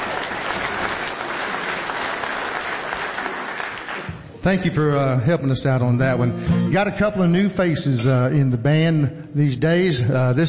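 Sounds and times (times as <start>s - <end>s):
audience applause at a band's live show: 0.0s - 4.3s
speech: 4.4s - 10.4s.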